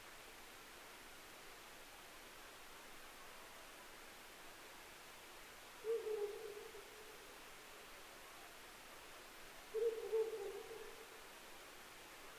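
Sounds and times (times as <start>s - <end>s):
steady hiss: 0.0s - 12.3s
Ural owl giving low hooting phrases: 5.8s - 6.9s, 9.7s - 11.0s.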